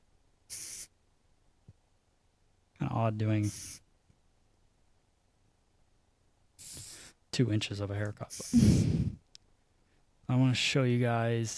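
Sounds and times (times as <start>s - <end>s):
aerosol texture spray hissing onto hair: 0.5s - 0.9s, 3.4s - 3.8s, 6.6s - 7.1s
speech: 3.0s - 3.8s, 7.4s - 9.2s, 10.3s - 11.5s.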